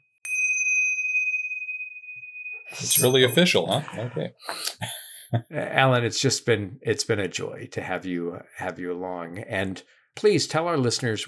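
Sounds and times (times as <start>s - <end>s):
pub last call bell ringing: 0.2s - 4.3s
speech: 2.7s - 11.2s
laughter: 2.8s - 5.7s.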